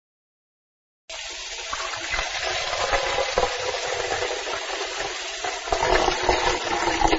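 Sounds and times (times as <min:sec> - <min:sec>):
water pouring into a metal pan: 0:01.1 - 0:07.1.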